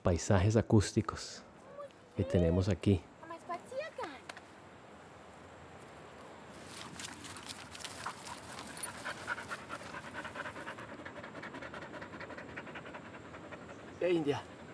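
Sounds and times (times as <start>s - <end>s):
speech: 0.0s - 1.5s, 2.2s - 3.1s, 14.1s - 14.5s
soft outdoor noise: 0.0s - 14.7s
dog panting during a walk: 7.8s - 14.7s.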